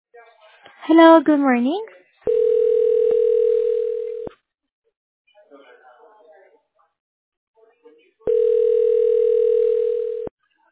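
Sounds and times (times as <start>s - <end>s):
speech: 0.8s - 2.0s
telephone dial tone: 2.3s - 4.3s, 8.3s - 10.3s.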